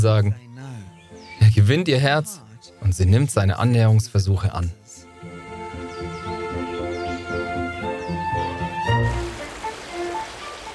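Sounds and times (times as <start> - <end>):
speech: 0.0 - 0.5, 1.5 - 4.8
soft orchestral music: 0.0 - 10.7
swollen rainforest stream flowing: 7.5 - 10.7
steady full rush of rain: 8.5 - 10.7.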